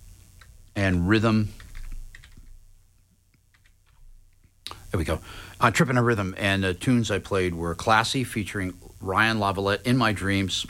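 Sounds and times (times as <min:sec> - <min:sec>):
speech: 0:00.8 - 0:01.6, 0:05.0 - 0:10.6
typing on a computer keyboard: 0:01.6 - 0:02.4.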